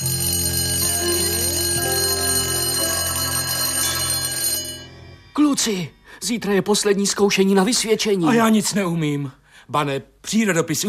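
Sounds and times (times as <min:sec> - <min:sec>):
electric school bell ringing at the end of lessons: 0:00.0 - 0:05.4
speech: 0:05.6 - 0:10.8.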